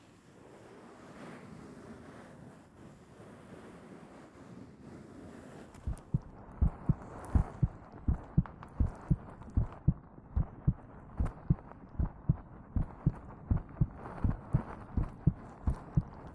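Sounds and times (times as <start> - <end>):
heartbeat heard through a chest: 5.8 - 16.3
soft rumbling hush: 5.8 - 16.3.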